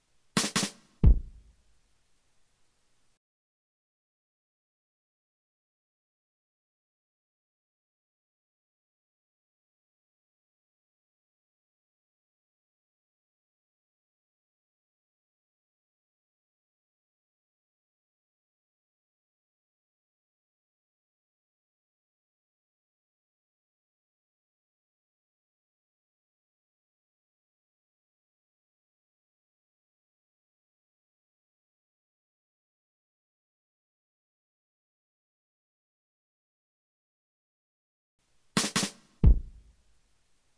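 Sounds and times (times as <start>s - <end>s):
drum drop beat: 0.4s - 1.5s, 38.6s - 39.7s.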